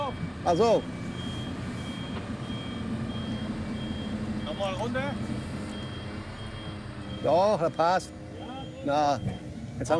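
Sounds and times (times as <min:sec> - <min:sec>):
low continuous truck engine rumble: 0:00.0 - 0:09.9
truck reversing beeps: 0:00.0 - 0:09.9
speech: 0:00.4 - 0:01.0, 0:04.7 - 0:05.4, 0:07.2 - 0:08.2, 0:08.8 - 0:09.9.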